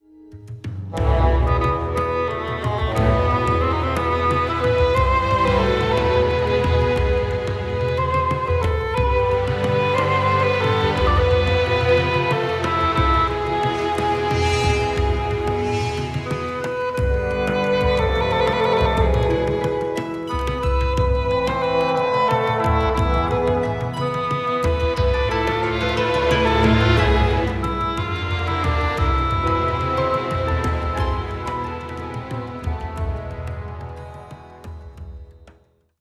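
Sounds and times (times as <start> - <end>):
wind: 0.9 - 35.0.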